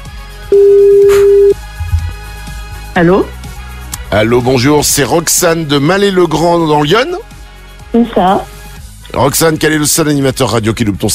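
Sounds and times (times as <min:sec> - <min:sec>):
telephone ringing tone of an outgoing call: 0:00.5 - 0:01.6
speech: 0:03.0 - 0:03.4, 0:04.1 - 0:08.5, 0:09.1 - 0:11.1.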